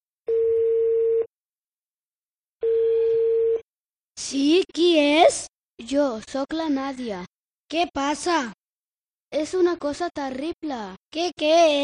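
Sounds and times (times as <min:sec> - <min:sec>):
telephone ringback tone while calling a relative: 0:00.3 - 0:01.3, 0:02.6 - 0:03.7
speech: 0:04.3 - 0:08.6, 0:09.3 - 0:11.8.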